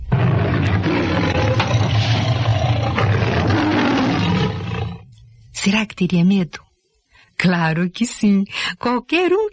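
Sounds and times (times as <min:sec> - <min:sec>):
lion roaring: 0:00.0 - 0:05.1
speech: 0:05.6 - 0:06.6, 0:07.4 - 0:09.5.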